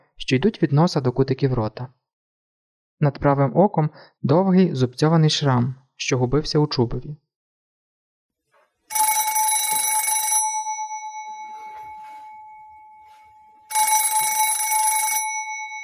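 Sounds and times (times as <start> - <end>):
speech: 0.3 - 2.0, 3.0 - 7.2
old-style telephone bell ringing: 8.9 - 15.8.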